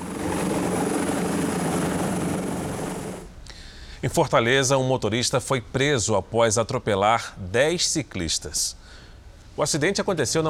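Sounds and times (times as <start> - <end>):
helicopter taking off with rotor thudding and whining engine: 0.0 - 3.4
speech: 4.0 - 9.0, 9.6 - 10.4.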